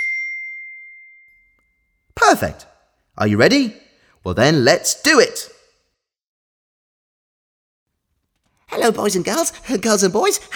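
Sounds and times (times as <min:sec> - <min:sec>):
bright bell ding: 0:00.0 - 0:02.1
speech: 0:02.3 - 0:05.6, 0:08.8 - 0:10.5.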